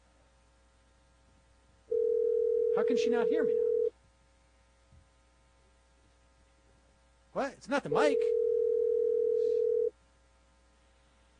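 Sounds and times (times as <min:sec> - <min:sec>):
telephone busy tone after a call is hung up: 0:01.9 - 0:03.9, 0:08.1 - 0:09.9
speech: 0:02.8 - 0:03.7, 0:07.4 - 0:08.4.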